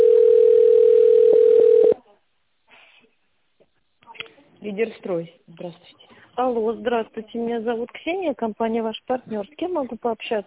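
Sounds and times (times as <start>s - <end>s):
telephone ringback tone while a call is transferred to an administrator: 0.0s - 2.0s
speech: 4.7s - 10.4s.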